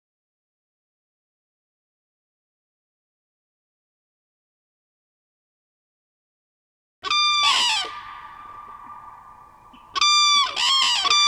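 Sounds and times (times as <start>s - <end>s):
common crane trumpeting call: 7.0s - 11.2s.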